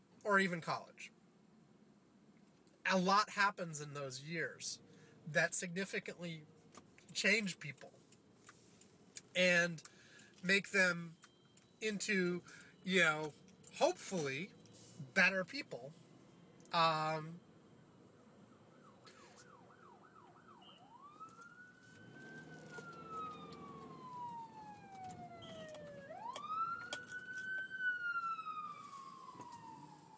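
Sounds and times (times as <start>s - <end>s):
speech: 0.2s - 1.2s, 2.8s - 8.0s, 9.4s - 11.2s, 11.8s - 16.0s, 16.7s - 17.4s
traffic rumble: 0.3s - 30.1s
police car siren wailing past: 18.5s - 30.1s.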